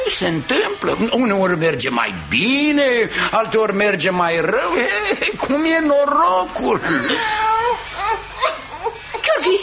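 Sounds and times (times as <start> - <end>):
speech: 0.1 - 7.4
baby fussing and whimpering: 6.8 - 9.3.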